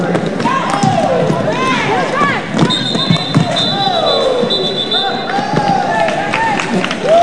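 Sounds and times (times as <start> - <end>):
crowd at a women's roller derby bout roaring and shouting: 0.0 - 7.2
high whistle tone: 2.6 - 5.3.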